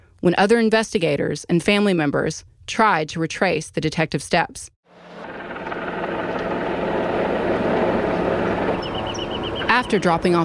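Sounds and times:
speech: 0.2 - 4.8, 9.8 - 10.4
helicopter flying with rotor and engine roar: 4.9 - 10.4.

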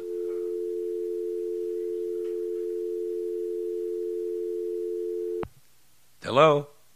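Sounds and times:
telephone dial tone after call disconnects: 0.0 - 5.4
speech: 6.3 - 6.7.

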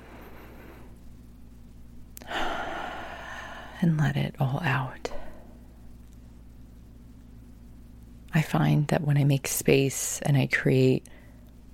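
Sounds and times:
deep breath in: 2.2 - 3.8
speech: 3.8 - 5.2, 8.4 - 11.2.

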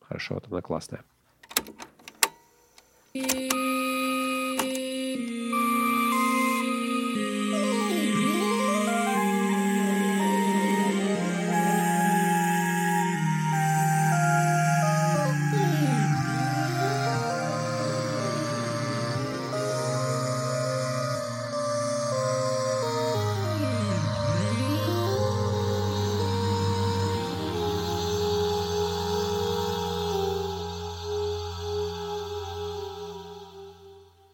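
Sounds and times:
speech: 0.1 - 1.9, 3.1 - 3.7
sharp clicks: 1.4 - 3.6
experimental electronic piece with sustained tones and swooping pitch arcs: 3.4 - 31.9.

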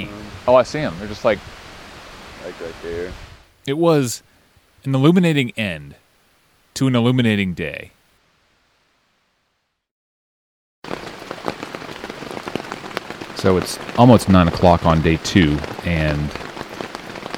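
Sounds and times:
speech: 0.0 - 1.6, 2.4 - 6.0, 6.8 - 8.0, 13.4 - 16.5
steady rain pattering densely on a tent: 0.0 - 6.8, 10.8 - 17.3.

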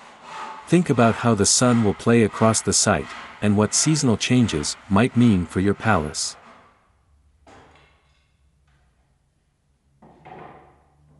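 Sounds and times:
hand saw cutting through a wooden board: 0.0 - 6.8
speech: 0.7 - 6.4.

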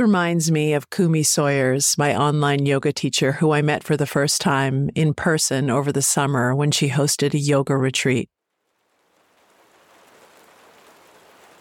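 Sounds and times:
speech: 0.0 - 8.4
gentle rain pattering on a barn roof: 8.3 - 11.5.

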